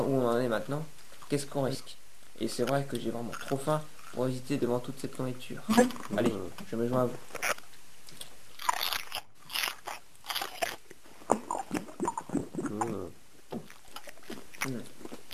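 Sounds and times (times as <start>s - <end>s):
speech: 0.1s - 7.6s
biting and chewing a fresh tomato: 2.7s - 4.3s, 7.2s - 15.3s.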